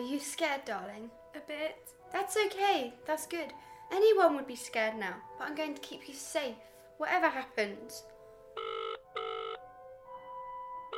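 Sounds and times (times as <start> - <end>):
speech: 0.0 - 8.1
electronic ringing tone of an outgoing telephone call: 8.6 - 9.7.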